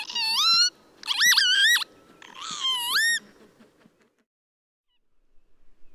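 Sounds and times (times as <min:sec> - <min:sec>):
northern lapwing calling with wheezy whistles: 0:00.0 - 0:03.8.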